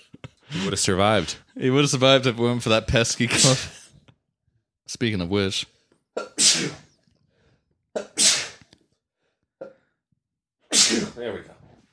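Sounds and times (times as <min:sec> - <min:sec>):
speech: 0:00.6 - 0:03.8, 0:04.9 - 0:06.8, 0:11.2 - 0:11.6
person sneezing: 0:06.2 - 0:07.0, 0:08.0 - 0:08.7, 0:10.7 - 0:11.2.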